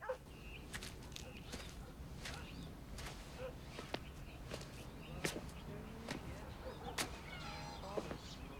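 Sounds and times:
low outdoor hum: 0:00.0 - 0:08.5
slow footsteps of a man walking to the front door of his house: 0:00.6 - 0:07.2.

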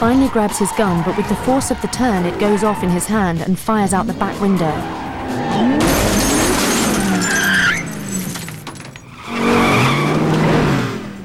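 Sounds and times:
speech: 0:00.0 - 0:06.2
car tires screeching under hard braking: 0:00.0 - 0:11.2.

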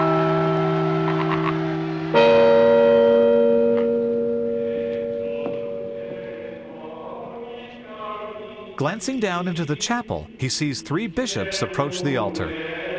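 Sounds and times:
great cathedral bells struck with a mallet in a belfry: 0:00.0 - 0:07.0
speech: 0:08.8 - 0:12.8.

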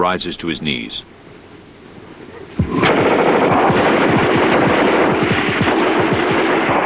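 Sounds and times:
speech: 0:00.0 - 0:01.2
rifle and Thompson machine gun fire from a squad on a ridge: 0:02.6 - 0:06.8.

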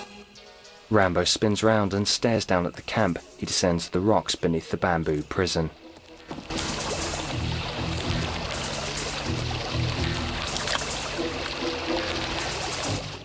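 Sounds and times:
speech: 0:00.9 - 0:05.8
water sloshing as someone wades across a river: 0:05.7 - 0:13.2.

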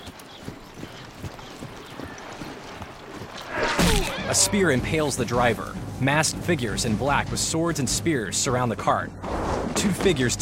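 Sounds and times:
horse hooves clip-clopping at a walk across a meadow: 0:00.0 - 0:07.8
speech: 0:04.3 - 0:10.4.

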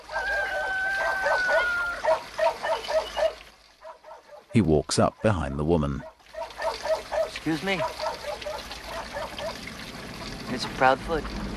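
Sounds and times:
dog barking in a farmyard: 0:00.0 - 0:04.6, 0:06.0 - 0:09.7
speech: 0:04.5 - 0:06.1, 0:07.4 - 0:08.0, 0:10.5 - 0:11.5.

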